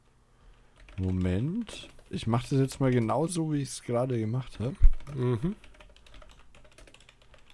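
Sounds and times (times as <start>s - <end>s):
typing on a mechanical keyboard: 0.5s - 3.2s, 4.6s - 7.5s
speech: 1.0s - 5.7s.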